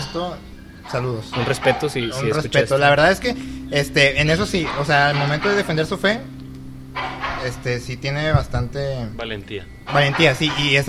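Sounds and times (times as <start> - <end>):
steady low electrical hum: 0.0 - 10.8
speech: 0.1 - 6.4, 7.0 - 10.8
dog barking: 1.3 - 2.2, 4.6 - 5.7, 7.0 - 7.7.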